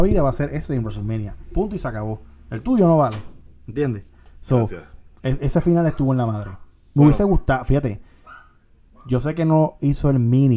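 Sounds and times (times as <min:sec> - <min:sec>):
speech: 0:00.0 - 0:08.2, 0:09.0 - 0:10.5
low hum: 0:00.0 - 0:10.5
single short high-pitched dog bark: 0:05.8 - 0:07.2, 0:08.2 - 0:09.2.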